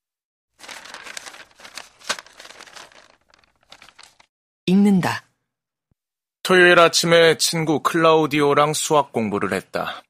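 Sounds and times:
paper sheets rustling and crinkling while being shuffled and flipped through: 0.6 - 4.3
speech: 4.7 - 5.2, 6.5 - 10.0.

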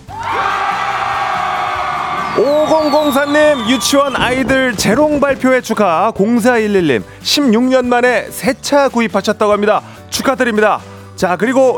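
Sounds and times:
crowd cheering and shouting: 0.0 - 5.4
speech: 2.4 - 11.7.

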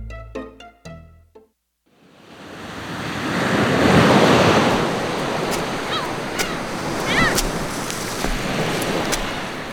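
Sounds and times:
ocean surf washing onto a beach: 2.0 - 9.7.

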